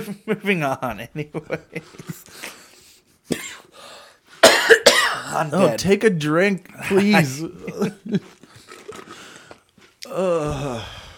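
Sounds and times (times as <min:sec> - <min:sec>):
speech: 0:00.0 - 0:02.6, 0:03.3 - 0:03.9, 0:05.3 - 0:08.5, 0:10.1 - 0:11.0
person coughing into the microphone: 0:03.3 - 0:03.7, 0:04.4 - 0:05.5.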